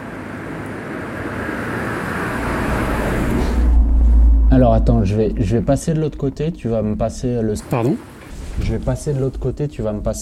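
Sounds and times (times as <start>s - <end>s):
car engine and tyre rumble passing by: 0.0s - 5.7s
speech: 4.6s - 10.2s.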